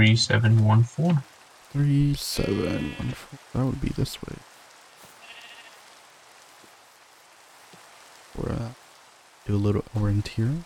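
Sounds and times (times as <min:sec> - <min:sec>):
speech: 0:00.0 - 0:04.5, 0:08.4 - 0:08.8, 0:09.4 - 0:10.6
soft steady hiss of rain: 0:00.0 - 0:10.6
sheep bleating in a video game: 0:02.4 - 0:03.3, 0:05.2 - 0:05.8.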